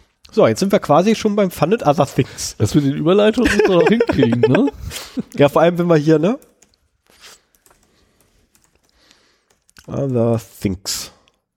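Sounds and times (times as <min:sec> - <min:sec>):
speech: 0:00.3 - 0:06.5, 0:09.9 - 0:11.2
laughter: 0:03.4 - 0:05.4
typing on a computer keyboard: 0:06.3 - 0:10.6.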